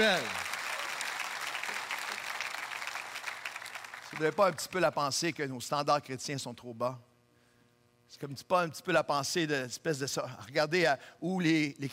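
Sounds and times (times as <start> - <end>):
speech: 0.0 - 0.4, 4.1 - 7.1, 8.1 - 11.9
audience applauding: 0.0 - 4.5.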